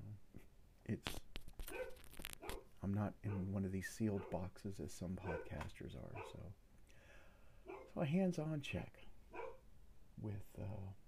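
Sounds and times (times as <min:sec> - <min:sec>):
speech: 0:00.9 - 0:01.3, 0:02.8 - 0:06.6, 0:08.0 - 0:09.1, 0:10.2 - 0:11.0
dog barking: 0:01.7 - 0:02.7, 0:03.3 - 0:03.5, 0:04.1 - 0:04.4, 0:05.2 - 0:06.5, 0:07.6 - 0:08.0, 0:09.3 - 0:09.6.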